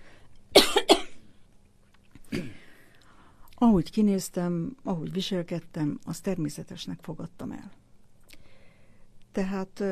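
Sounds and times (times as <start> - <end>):
person coughing: 0.6 - 1.2, 2.3 - 2.7
speech: 3.6 - 7.8, 9.3 - 9.9.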